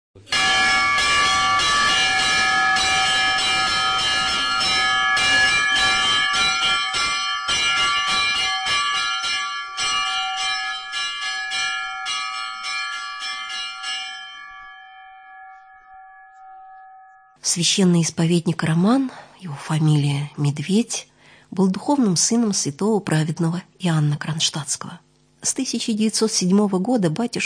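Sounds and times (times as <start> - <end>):
church bells ringing at a small church: 0.2 - 17.4
speech: 17.5 - 27.4.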